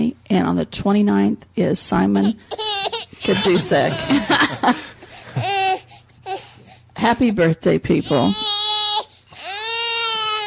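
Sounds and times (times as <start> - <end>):
speech: 0.1 - 5.0, 7.0 - 8.5
newborn baby wailing: 2.5 - 4.3, 5.3 - 6.6, 8.1 - 10.4
laughter: 3.2 - 5.4.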